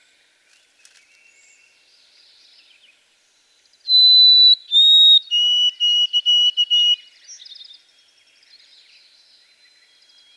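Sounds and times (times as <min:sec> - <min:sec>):
White-throated sparrow song: 0:03.9 - 0:07.5.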